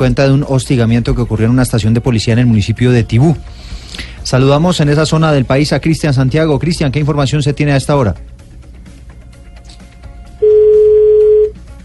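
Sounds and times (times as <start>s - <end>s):
speech: 0.0s - 8.3s
electronic telephone ringing tone on a phone line: 10.4s - 11.6s.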